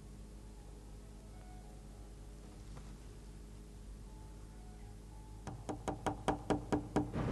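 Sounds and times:
knocking on a hotel room door: 0:05.4 - 0:07.2.

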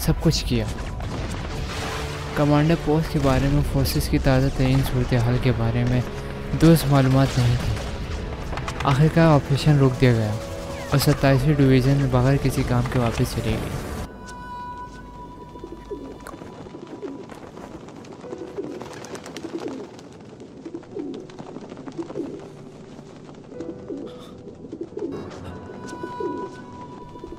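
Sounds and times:
speech: 0:00.0 - 0:00.9, 0:02.4 - 0:07.8, 0:08.8 - 0:13.9
faint tonal hum: 0:14.1 - 0:16.9
pigeons cooing: 0:15.5 - 0:22.5, 0:23.6 - 0:27.3.

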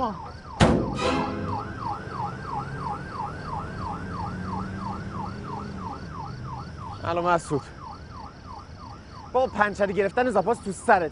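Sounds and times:
speech: 0:00.0 - 0:00.4, 0:07.0 - 0:07.8, 0:09.3 - 0:11.1
ambulance siren wailing in a fast rise-and-fall pattern: 0:00.0 - 0:09.4
low rumble of traffic: 0:00.0 - 0:11.1
sharp thump: 0:00.6 - 0:01.5.

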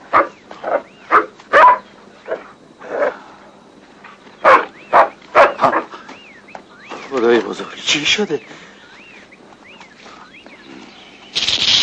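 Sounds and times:
dog barking: 0:00.1 - 0:03.1, 0:04.4 - 0:05.9
speech: 0:07.4 - 0:08.6.

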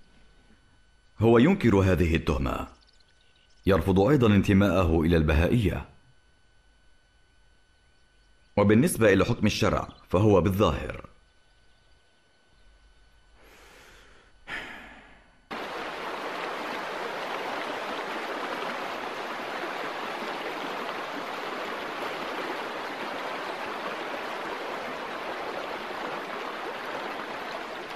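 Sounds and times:
speech: 0:01.2 - 0:02.8, 0:03.6 - 0:05.9, 0:08.6 - 0:11.1
short breathy sigh: 0:13.4 - 0:15.4
loud rush of flowing river water: 0:15.5 - 0:27.9.

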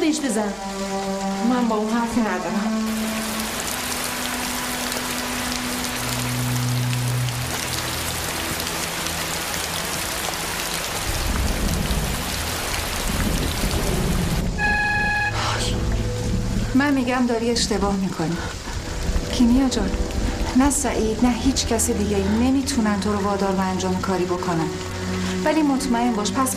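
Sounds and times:
steady rain pouring down outside: 0:00.0 - 0:26.5
speech: 0:00.1 - 0:03.1, 0:16.8 - 0:18.6, 0:19.4 - 0:26.5
low rumble: 0:11.1 - 0:23.7.

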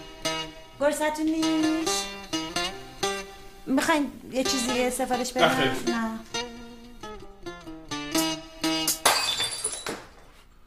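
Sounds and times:
short run of tonal musical notes: 0:00.0 - 0:08.9
speech: 0:00.8 - 0:02.2, 0:03.7 - 0:06.1
drinking glass dropped from a hand and shattering: 0:08.9 - 0:10.4.

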